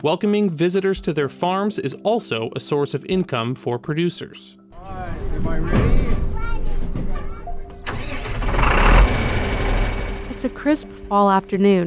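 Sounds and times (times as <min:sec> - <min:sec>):
speech: 0:00.0 - 0:06.8, 0:10.4 - 0:11.8
diesel tractor engine starting on a farm: 0:07.8 - 0:10.9.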